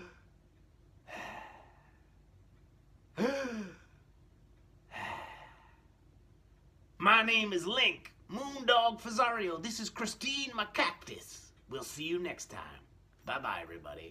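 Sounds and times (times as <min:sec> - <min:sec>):
people taking deep breaths together with gasping inhales and sighing exhales: 0:01.1 - 0:02.1, 0:04.9 - 0:05.9
speech: 0:07.2 - 0:14.1.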